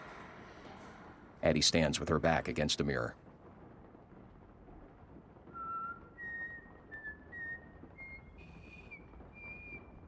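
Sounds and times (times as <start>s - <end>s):
steady hiss: 0.0s - 10.0s
speech: 1.4s - 3.2s
girl whistling a slow tune: 5.6s - 9.9s.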